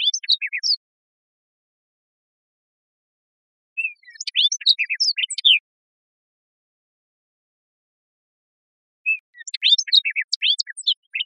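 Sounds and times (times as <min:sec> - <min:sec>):
hooded oriole scratchy chatter and sliding whistles: 0:00.0 - 0:00.8, 0:03.8 - 0:05.6, 0:09.1 - 0:11.2.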